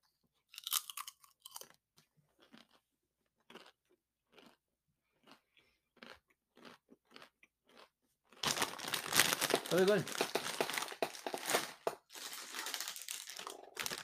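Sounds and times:
tortilla chip being bitten and chewed: 0.5 - 14.0
crackly rustling noise: 8.4 - 14.0
speech: 9.7 - 10.2.

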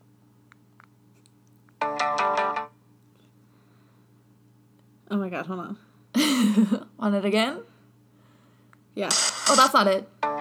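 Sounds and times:
speech: 5.3 - 7.7, 9.0 - 10.1
tinny music from a small phone speaker: 9.1 - 10.3.

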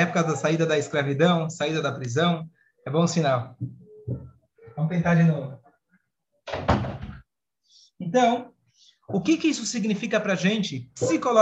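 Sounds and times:
speech: 0.0 - 5.6, 8.0 - 11.4
door rattling and thumping as a child tries to open it: 6.5 - 7.2.

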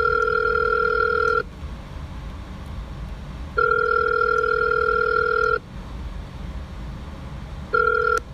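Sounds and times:
phone line ringing out unanswered in long electronic tones: 0.0 - 1.5, 3.6 - 5.6, 7.7 - 8.3.

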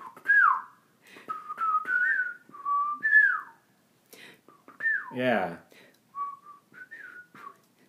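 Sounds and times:
person whistling a bouncy cartoon theme tune: 0.0 - 0.7, 1.3 - 3.6, 4.7 - 5.2, 6.2 - 7.6
speech: 5.1 - 5.7.

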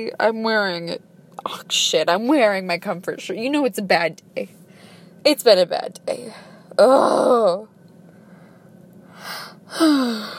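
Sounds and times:
speech: 0.0 - 4.6, 5.2 - 7.7, 9.2 - 10.3
person yawning: 9.2 - 10.3.

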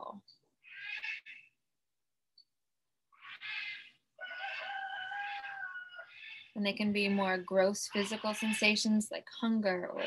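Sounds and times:
wild parrots squawking with loud harsh calls: 0.6 - 1.5, 3.2 - 9.0, 9.9 - 10.0
speech: 6.6 - 10.0.

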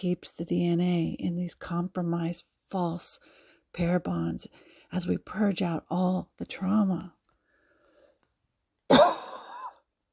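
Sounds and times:
speech: 0.0 - 7.2
single short harsh breathy cough: 8.9 - 9.8.

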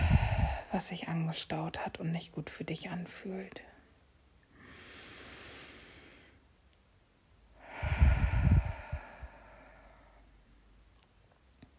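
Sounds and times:
fast breathing in and out during a breathing exercise: 0.0 - 0.8, 4.5 - 6.4, 7.6 - 10.4
speech: 0.7 - 3.7.

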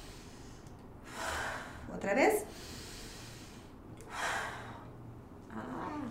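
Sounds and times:
slow deep breaths in a breathing exercise demonstration: 0.0 - 5.2
speech: 2.0 - 2.7.

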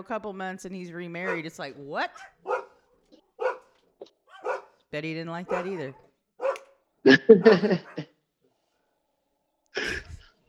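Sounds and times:
speech: 0.0 - 2.6, 4.9 - 6.0, 7.0 - 8.1
guard dogs barking at a cat: 1.2 - 6.8, 7.4 - 8.2
laughter: 7.1 - 8.1.

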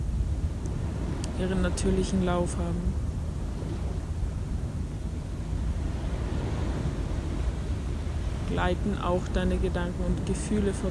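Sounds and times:
ocean surf roaring: 0.0 - 10.8
speech: 1.4 - 3.0, 8.5 - 10.8.

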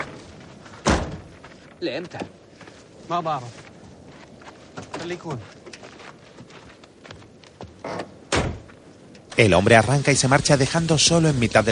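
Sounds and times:
car trunk and van door shutting in the desert: 0.8 - 1.3, 7.8 - 8.7
speech: 1.8 - 2.4, 3.1 - 3.6, 5.0 - 5.6, 9.4 - 11.7.

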